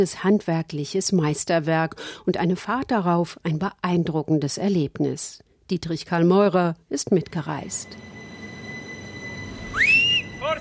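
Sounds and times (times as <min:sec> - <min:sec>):
speech: 0:00.0 - 0:08.2
narrow-gauge train whistle: 0:08.8 - 0:10.5.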